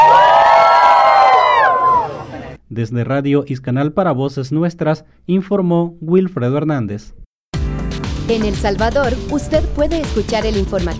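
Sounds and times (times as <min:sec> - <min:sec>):
crowd of pilgrims shouting and cheering: 0:00.0 - 0:02.6
speech: 0:02.8 - 0:07.2, 0:08.3 - 0:10.9.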